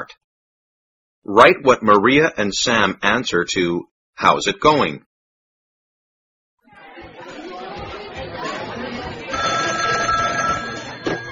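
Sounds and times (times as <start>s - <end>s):
speech: 1.2s - 5.1s
chatter: 6.6s - 11.2s
telephone ringing with an incoming call: 9.3s - 11.2s.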